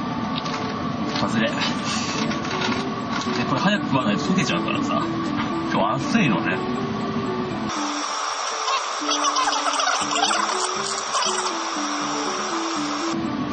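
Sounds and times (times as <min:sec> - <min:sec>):
air conditioner running on a hot day: 0:00.0 - 0:13.5
speech: 0:01.2 - 0:02.1, 0:03.3 - 0:06.9, 0:07.7 - 0:07.9.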